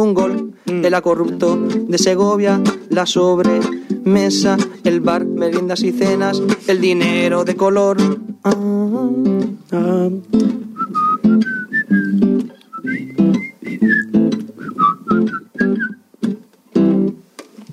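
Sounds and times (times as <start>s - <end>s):
speech: 0.0s - 10.6s
person whistling a lively tune: 10.8s - 16.0s.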